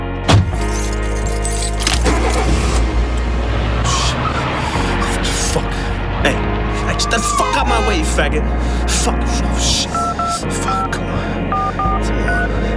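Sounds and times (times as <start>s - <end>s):
metallic jangling and rattling inside a car: 0.3s - 2.8s
car engine rumbling: 0.5s - 10.0s
speech: 7.1s - 12.7s.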